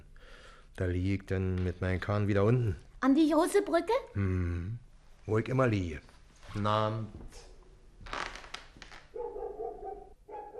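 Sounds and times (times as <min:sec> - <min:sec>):
speech: 0:00.8 - 0:07.5
dog barking: 0:09.1 - 0:10.5.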